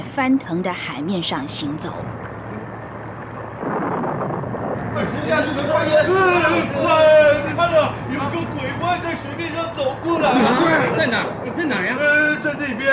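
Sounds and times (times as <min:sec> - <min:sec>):
speech: 0:00.0 - 0:02.2, 0:05.0 - 0:12.9
wind: 0:00.0 - 0:12.9
storm roaring with steady rumbling: 0:01.9 - 0:08.2, 0:09.2 - 0:12.9.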